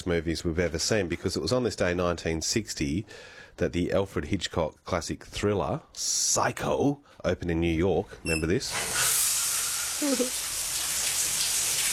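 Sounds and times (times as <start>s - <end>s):
speech: 0.0s - 9.1s, 10.0s - 10.4s
shower spraying with a woman showering: 8.7s - 11.9s.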